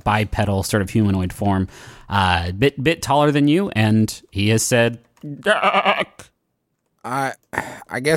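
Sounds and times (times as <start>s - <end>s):
speech: 0.0s - 6.3s, 7.0s - 8.1s
person imitating a goat bleat with a quavering cry: 5.4s - 6.3s.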